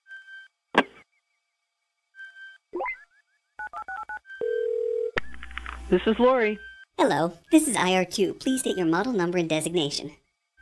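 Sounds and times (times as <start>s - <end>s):
telephone dial-tone beeps: 3.6s - 5.2s
sustained buzzing telephone ring tone: 3.6s - 5.8s
speech: 5.9s - 10.2s.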